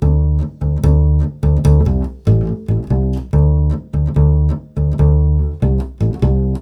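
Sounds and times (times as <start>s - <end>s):
nu jazz bass line in D major: 0.0s - 6.6s.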